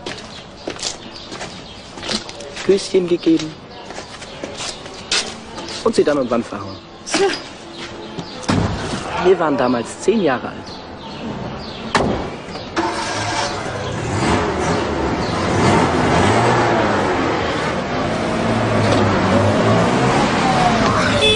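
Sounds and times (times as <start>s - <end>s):
speech: 2.7s - 3.6s, 5.8s - 7.5s, 9.2s - 10.8s
sharp knocks: 11.9s - 12.4s
car engine rumbling as the car drives past: 12.3s - 21.3s.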